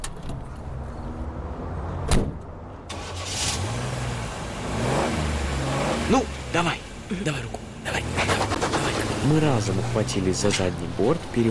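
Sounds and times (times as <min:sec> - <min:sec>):
truck engine idling and revving: 0:00.3 - 0:11.4
truck cab door slamming shut: 0:02.1 - 0:02.4
speech: 0:06.1 - 0:08.2, 0:09.2 - 0:11.4.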